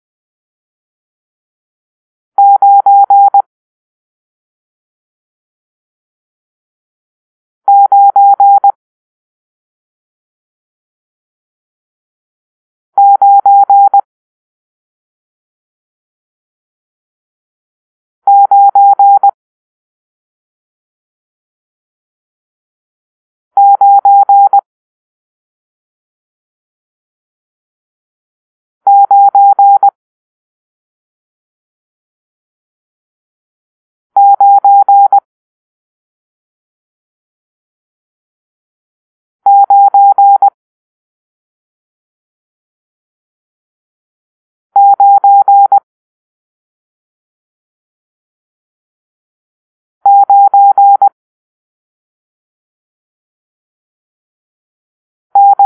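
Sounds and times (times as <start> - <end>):
morse code beeps for numeral nine: 2.4 - 3.4, 7.7 - 8.7, 13.0 - 14.0, 18.3 - 19.3, 23.6 - 24.6, 28.9 - 29.9, 34.2 - 35.2, 39.5 - 40.5, 44.8 - 45.8, 50.1 - 51.2, 55.4 - 55.6.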